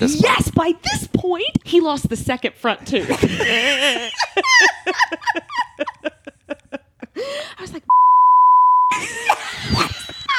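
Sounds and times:
speech: 0:00.0 - 0:05.4
laughter: 0:03.0 - 0:07.2, 0:08.9 - 0:10.3
high-pitched censor bleep over an expletive: 0:07.9 - 0:08.9.

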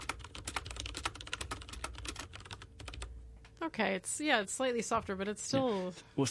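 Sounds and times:
typing on a heavy metal-based gaming keyboard with rubber-cushioned keys: 0:00.0 - 0:03.1
speech: 0:03.6 - 0:06.3.

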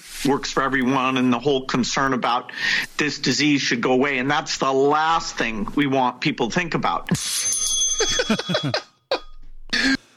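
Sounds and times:
speech: 0:00.2 - 0:08.9
bright bell marking the end of an excerpt: 0:07.2 - 0:09.3
laughter: 0:08.0 - 0:08.9.

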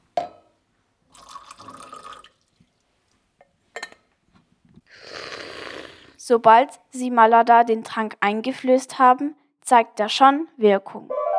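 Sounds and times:
splashy water drips: 0:01.1 - 0:03.5
speech: 0:06.3 - 0:11.2.

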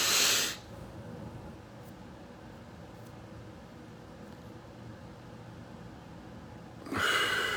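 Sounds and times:
deep relaxing breath in through the nose during guided calming breathing: 0:00.0 - 0:00.6, 0:06.9 - 0:07.5.

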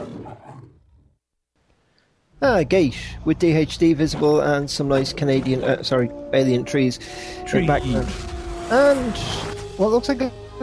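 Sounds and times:
lion roar played as a sound effect: 0:00.0 - 0:01.2
speech: 0:02.4 - 0:10.6.

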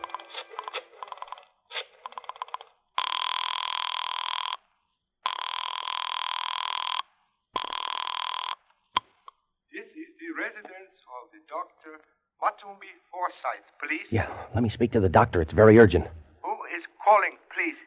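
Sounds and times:
telephone ringing tones: 0:02.0 - 0:04.6, 0:05.3 - 0:08.6
telephone number dialing tones: 0:02.1 - 0:04.6, 0:05.3 - 0:07.0, 0:07.6 - 0:08.6
speech: 0:09.8 - 0:16.2, 0:17.1 - 0:17.8.

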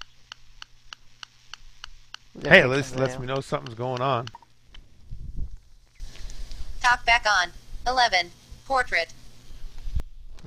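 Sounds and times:
crisp ticking during phone setup: 0:00.0 - 0:04.8
speech: 0:02.4 - 0:04.4, 0:07.1 - 0:09.2.

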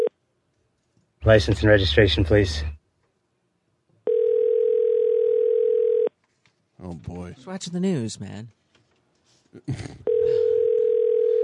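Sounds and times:
speech: 0:01.3 - 0:02.8, 0:06.8 - 0:08.6, 0:09.5 - 0:10.5
phone ringback tone while calling: 0:04.1 - 0:06.1, 0:10.0 - 0:11.4.

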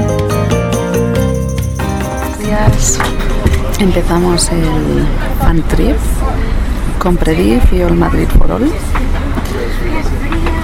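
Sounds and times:
low rumble of a moving bus: 0:00.4 - 0:10.6
indistinct voices murmuring faintly: 0:02.2 - 0:10.6
speech: 0:03.8 - 0:06.4, 0:07.0 - 0:10.2.

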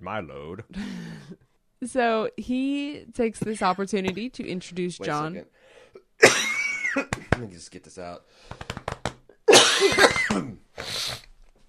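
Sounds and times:
speech: 0:00.0 - 0:08.8, 0:09.8 - 0:11.3
harsh dry hacking cough: 0:06.0 - 0:07.4, 0:09.5 - 0:10.7.

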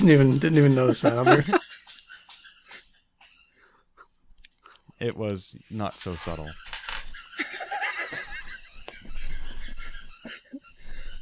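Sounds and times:
speech: 0:00.0 - 0:01.6, 0:05.0 - 0:06.7
laughter: 0:00.0 - 0:01.8, 0:07.3 - 0:10.6
squeaky toy chewed by a dog squeaking: 0:00.6 - 0:03.8, 0:06.0 - 0:07.5, 0:08.7 - 0:11.1.

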